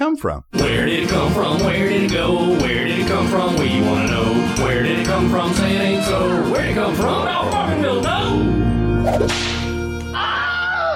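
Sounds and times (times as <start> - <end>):
speech: 0.1 - 9.5
musical backing: 0.5 - 10.3
whip crack: 9.1 - 9.7.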